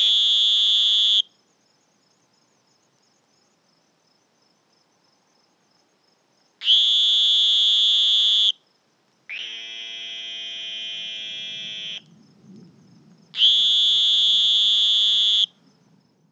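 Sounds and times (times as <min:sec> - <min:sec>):
Sonoran green toads trilling in high buzzy bursts: 0:00.0 - 0:01.3, 0:06.6 - 0:08.6, 0:09.3 - 0:12.1, 0:13.3 - 0:15.6.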